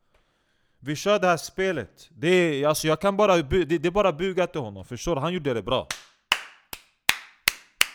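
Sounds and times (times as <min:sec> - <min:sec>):
speech: 0:00.8 - 0:06.1
sharp hand claps: 0:05.9 - 0:07.9.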